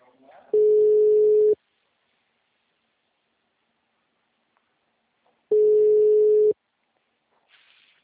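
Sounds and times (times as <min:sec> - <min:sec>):
mobile phone call ringback tone: 0:00.6 - 0:01.6, 0:05.5 - 0:06.6.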